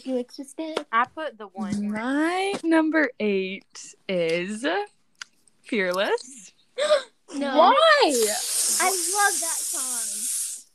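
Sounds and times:
speech: 0:00.0 - 0:05.0, 0:05.7 - 0:10.2
voiced sound: 0:05.9 - 0:10.3
voice imitating a snake's hiss: 0:08.0 - 0:10.7.

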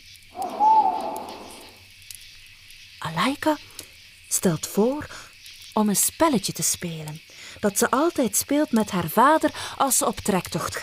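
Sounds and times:
faint hiss of night air: 0:00.4 - 0:01.8
owl hooting at night: 0:00.4 - 0:01.8
speech: 0:03.1 - 0:03.7, 0:04.3 - 0:10.8.

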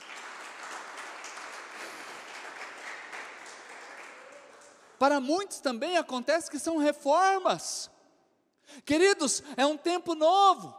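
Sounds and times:
crowd applauding at a church service: 0:00.0 - 0:05.1
speech: 0:05.0 - 0:08.0, 0:08.8 - 0:10.7.

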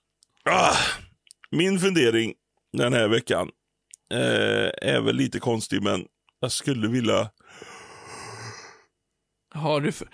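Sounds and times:
man fake yawning: 0:00.4 - 0:01.1
speech: 0:01.5 - 0:07.7, 0:09.5 - 0:10.1.

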